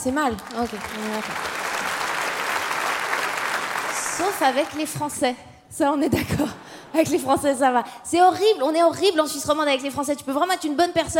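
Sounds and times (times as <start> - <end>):
speech: 0.0 - 1.6, 4.2 - 11.1
audience applauding: 0.2 - 5.0.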